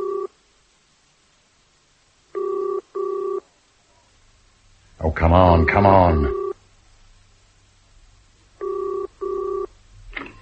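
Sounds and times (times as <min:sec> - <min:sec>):
telephone ringing tone through the receiver of a public phone booth: 0:00.0 - 0:00.3, 0:02.4 - 0:03.4, 0:05.6 - 0:06.6, 0:08.6 - 0:09.7
speech: 0:05.1 - 0:06.4.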